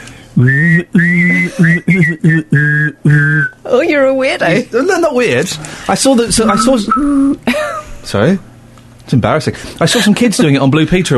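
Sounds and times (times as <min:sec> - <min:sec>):
speech: 0:00.4 - 0:01.9, 0:04.3 - 0:08.5, 0:09.1 - 0:11.1
person humming a low buzzing hum: 0:00.4 - 0:03.5
person whistling a high tone: 0:00.5 - 0:03.6.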